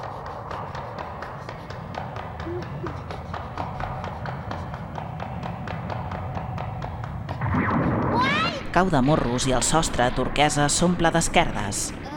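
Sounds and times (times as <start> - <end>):
footsteps of someone running at full speed along a corridor: 0.0 - 8.8
speech: 8.8 - 12.0.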